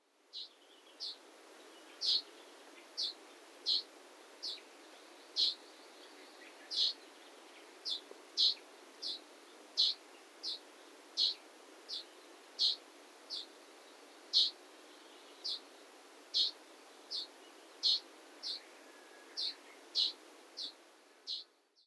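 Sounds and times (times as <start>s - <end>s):
Japanese leaf warbler in Tsugaike nature park: 0.3s - 21.6s.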